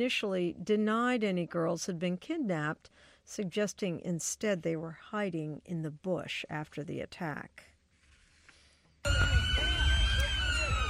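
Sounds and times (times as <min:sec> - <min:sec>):
speech: 0:00.0 - 0:07.7
loud emergency vehicle siren wailing: 0:09.1 - 0:10.8.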